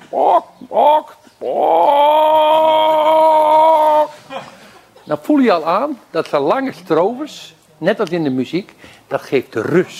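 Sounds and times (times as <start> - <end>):
person imitating a hen clucking: 0.0 - 4.4
speech: 0.1 - 2.2, 5.1 - 9.9.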